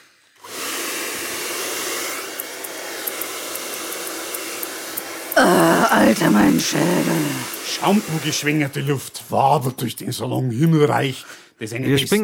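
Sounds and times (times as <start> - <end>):
hair dryer blowing in a hair salon: 0.3 - 8.7
speech: 6.0 - 12.2.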